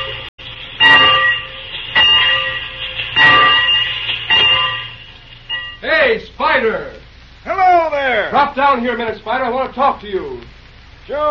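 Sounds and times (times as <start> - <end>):
locomotive bell clanging: 0.0 - 5.9
low steady rumble: 0.0 - 11.2
speech: 6.1 - 6.9, 8.4 - 10.5, 11.1 - 11.2.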